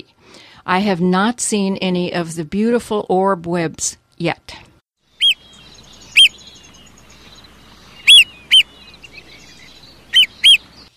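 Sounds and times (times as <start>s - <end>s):
speech: 0.7s - 4.7s
marbled murrelet seabird calls: 5.1s - 10.9s.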